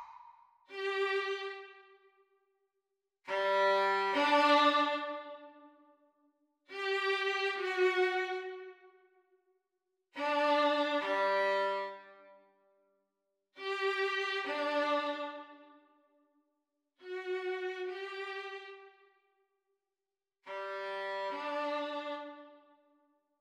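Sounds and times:
violin duet practice: 0:00.7 - 0:02.0, 0:03.3 - 0:05.7, 0:06.7 - 0:08.7, 0:10.2 - 0:12.3, 0:13.6 - 0:15.8, 0:17.0 - 0:18.9, 0:20.5 - 0:22.8.

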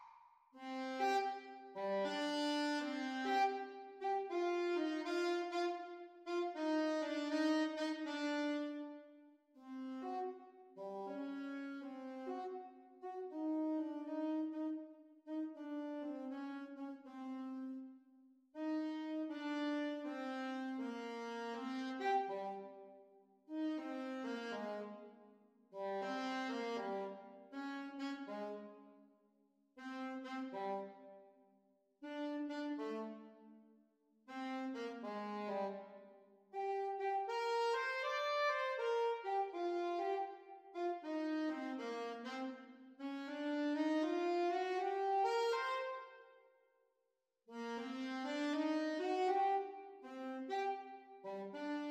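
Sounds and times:
saxophone duet playalong: 0:00.6 - 0:17.9, 0:18.5 - 0:28.9, 0:29.8 - 0:31.2, 0:32.0 - 0:33.5, 0:34.3 - 0:46.3, 0:47.5 - 0:51.9.

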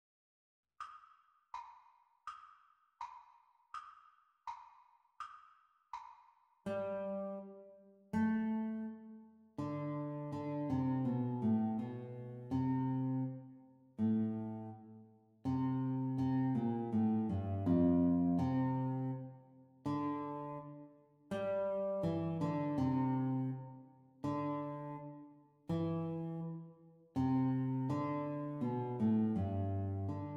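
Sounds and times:
guitar duet playalong at exam speed: 0:06.7 - 0:13.4, 0:14.0 - 0:14.8, 0:15.5 - 0:26.6, 0:27.2 - 0:30.3.

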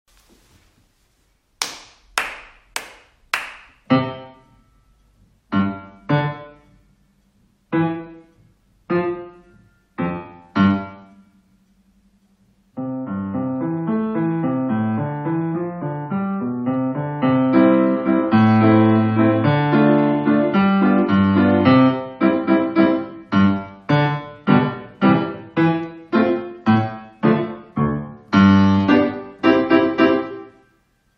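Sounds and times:
grade one piano duet at exam speed with teacher parts: 0:02.2 - 0:06.8, 0:07.7 - 0:11.4, 0:12.8 - 0:30.6.

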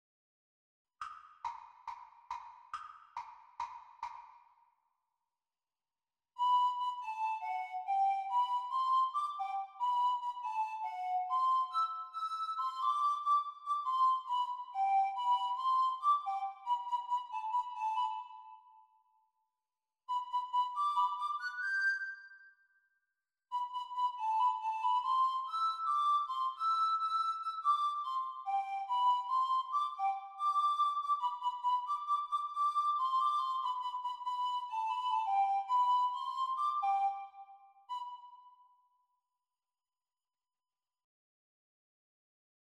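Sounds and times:
descant recorder performance: 0:06.4 - 0:18.8, 0:20.1 - 0:22.4, 0:23.5 - 0:38.7.

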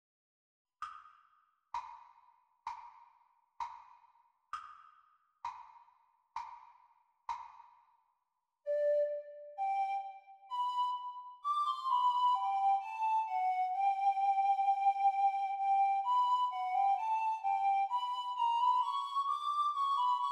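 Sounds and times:
descant recorder practice: 0:08.7 - 0:20.3.

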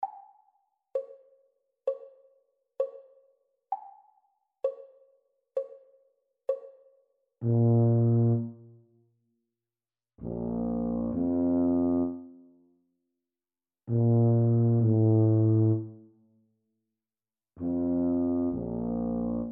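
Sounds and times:
Bb tuba duet practice: 0:07.4 - 0:08.7, 0:10.2 - 0:12.5, 0:13.9 - 0:16.0, 0:17.6 - 0:19.5.

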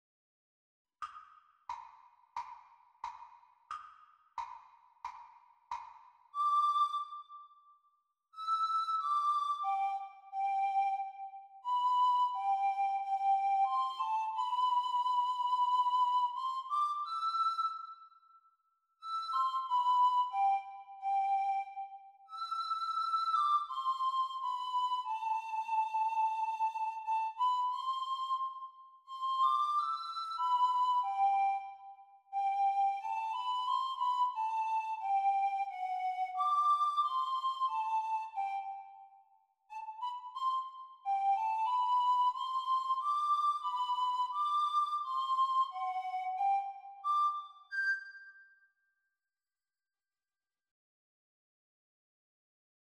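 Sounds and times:
descant recorder practice piece: 0:06.4 - 0:07.4, 0:08.4 - 0:18.2, 0:19.0 - 0:48.5.

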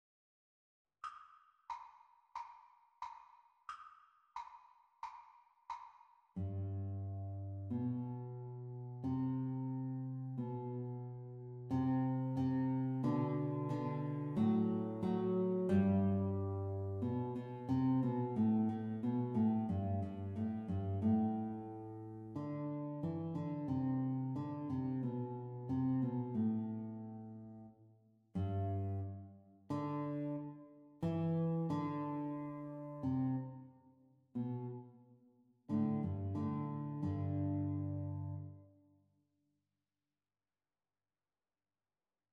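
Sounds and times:
guitar duet playalong at exam speed: 0:06.5 - 0:27.6, 0:28.4 - 0:33.6, 0:35.7 - 0:38.5.

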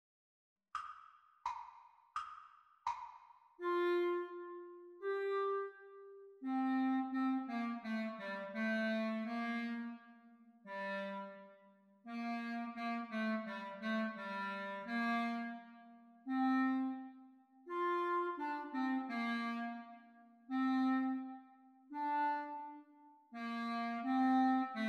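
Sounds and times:
clarinet duet: 0:03.6 - 0:24.8.

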